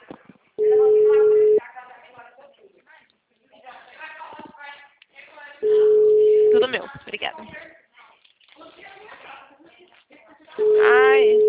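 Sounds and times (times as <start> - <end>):
quiet talk: 0.0 - 11.4
telephone line tone as a call is placed: 0.6 - 1.6, 5.6 - 6.7, 10.6 - 11.4
speech: 7.3 - 7.8.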